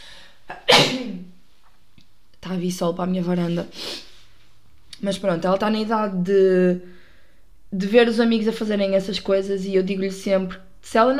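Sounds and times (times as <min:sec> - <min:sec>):
person sneezing: 0:00.5 - 0:01.3
speech: 0:02.5 - 0:04.1, 0:05.0 - 0:07.0, 0:07.7 - 0:11.1
intake of breath: 0:06.9 - 0:07.5.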